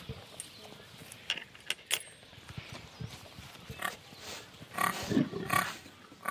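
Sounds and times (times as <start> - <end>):
pigs grunting and snuffling at feeding time: 3.8 - 6.2.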